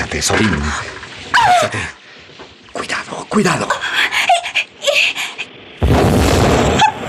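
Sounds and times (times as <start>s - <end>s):
speech: 0.2s - 2.0s, 2.8s - 4.2s
torpedo explosion blowing up a ship: 5.8s - 7.0s.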